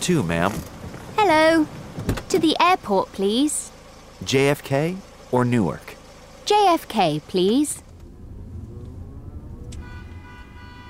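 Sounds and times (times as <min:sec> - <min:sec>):
speech: 0:00.0 - 0:03.6, 0:04.2 - 0:05.9, 0:06.5 - 0:07.8
morning city traffic in New York rumbling: 0:00.0 - 0:10.8
sustained tonal horn or siren note: 0:08.6 - 0:10.8.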